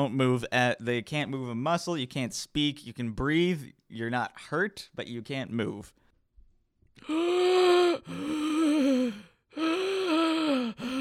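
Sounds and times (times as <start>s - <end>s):
speech: 0.0s - 6.0s, 7.0s - 9.8s
loud heavy strained breathing with raspy moaning edge: 7.0s - 10.9s.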